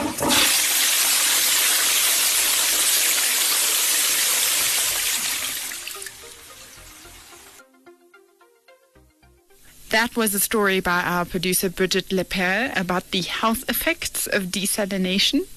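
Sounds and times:
toilet flushing: 0.0 - 7.6
speech: 10.0 - 15.5.

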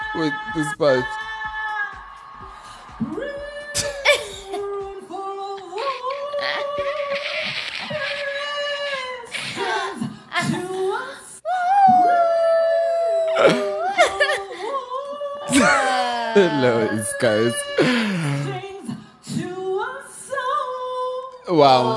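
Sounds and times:
speech: 0.1 - 1.2, 3.0 - 3.9, 16.4 - 18.0, 21.5 - 21.9
woman singing high sustained vocal wails on stage: 3.0 - 21.4
breathy laugh-like bursts: 6.0 - 8.4.

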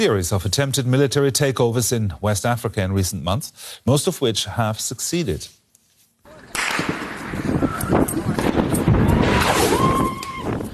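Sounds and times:
speech: 0.0 - 5.6
gunfire cracks near government building: 6.5 - 9.9
brief tonal wail: 9.0 - 10.7.

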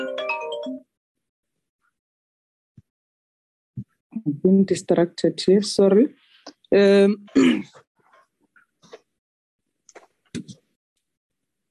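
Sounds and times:
phone ringtone: 0.0 - 0.9
speech: 4.2 - 7.8.

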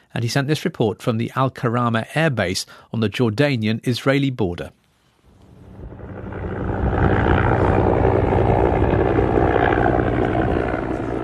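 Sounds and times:
speech: 0.1 - 4.8
helicopter engine and rotor roaring at an airbase: 5.4 - 11.2.

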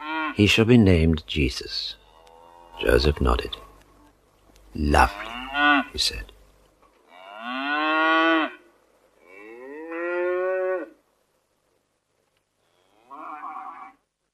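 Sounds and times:
speech: 0.4 - 2.0, 2.8 - 3.6, 4.7 - 6.3
cattle mooing in a shed: 2.0 - 2.9, 5.0 - 6.0, 7.1 - 8.6, 9.2 - 11.0, 12.7 - 14.0.

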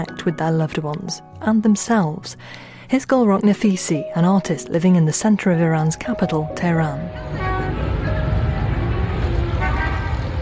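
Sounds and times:
speech: 0.0 - 7.5
dense city street traffic rumbling: 4.0 - 10.3
car horns tooting: 9.5 - 10.3.

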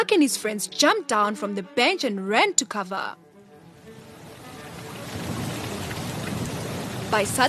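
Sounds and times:
speech: 0.0 - 3.2, 7.1 - 7.4
heavy rain falling: 4.4 - 7.4.

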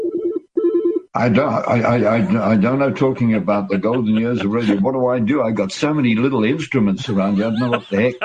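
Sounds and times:
telephone ringing with an electronic trill: 0.0 - 1.1
laughter: 1.2 - 8.2
speech: 1.2 - 8.2.

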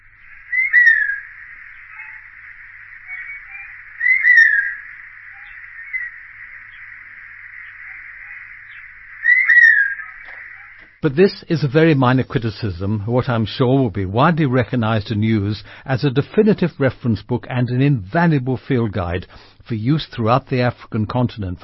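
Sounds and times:
Forest Buzzard downslurred whistled pew calls: 0.0 - 11.0
steady band of hiss: 0.0 - 20.9
speech: 11.0 - 21.6.

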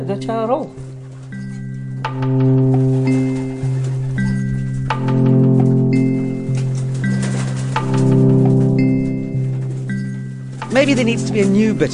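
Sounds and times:
speech: 0.0 - 0.8, 2.2 - 3.6, 10.8 - 11.9
chorus of pigeons cooing: 0.8 - 11.9.

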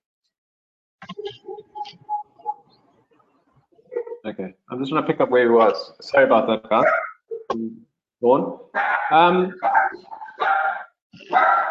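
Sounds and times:
speech: 4.2 - 10.6
dog barking: 6.8 - 7.2, 8.8 - 11.7.

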